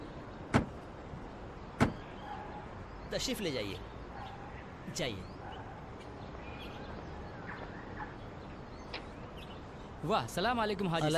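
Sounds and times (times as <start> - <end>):
door latch clunks: 0.5 - 0.8, 1.8 - 2.0
speech: 3.1 - 3.9, 4.9 - 5.4, 10.0 - 11.1.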